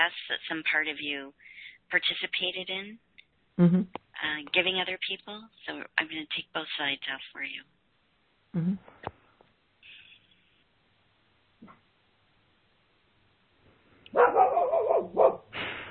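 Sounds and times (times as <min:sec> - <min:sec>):
speech: 0:00.0 - 0:07.8, 0:08.5 - 0:09.0
caller's dog barking: 0:14.1 - 0:15.5.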